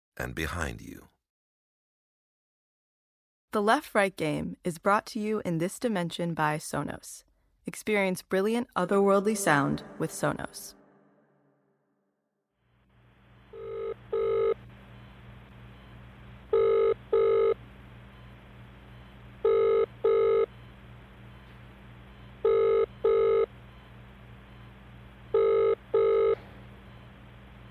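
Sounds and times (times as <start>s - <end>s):
speech: 0.2s - 1.1s, 3.5s - 10.8s
faint steady hum: 12.8s - 27.6s
telephone ringing for an incoming call: 13.5s - 14.6s, 16.5s - 17.6s, 19.4s - 20.6s, 22.4s - 23.6s, 25.3s - 26.6s.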